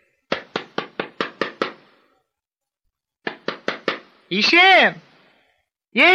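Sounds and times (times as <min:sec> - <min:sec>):
firm knocking on a door: 0:00.3 - 0:01.8, 0:03.2 - 0:04.0
speech: 0:04.3 - 0:05.1, 0:06.0 - 0:06.1.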